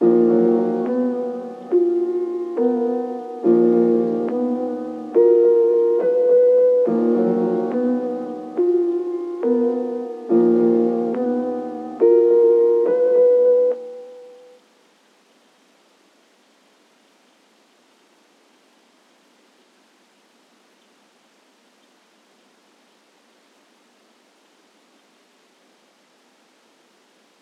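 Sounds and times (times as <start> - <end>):
piano melody in D sharp minor: 0.0 - 14.6.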